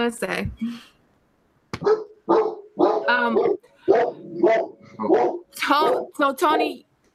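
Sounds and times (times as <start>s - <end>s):
speech: 0.0s - 0.9s, 3.1s - 7.1s
dog barking: 1.8s - 6.2s.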